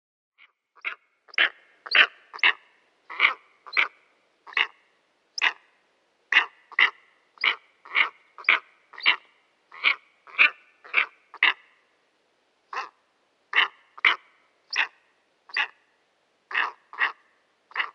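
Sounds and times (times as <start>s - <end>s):
steppe eagle giving harsh barking calls: 0.8s - 4.8s, 5.4s - 5.6s, 6.3s - 11.6s, 12.7s - 15.8s, 16.5s - 17.9s.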